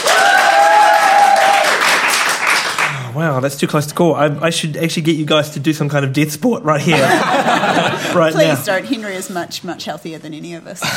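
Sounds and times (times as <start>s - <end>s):
high whoop or whistle: 0.0s - 1.8s
live audience clapping: 0.0s - 3.2s
speech: 3.2s - 10.9s
laughter: 6.8s - 8.9s.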